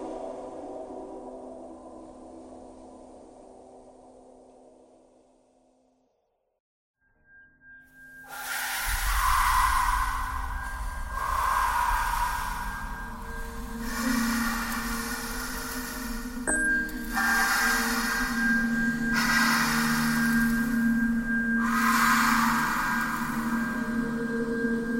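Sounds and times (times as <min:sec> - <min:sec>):
breathing: 0:08.3 - 0:24.9.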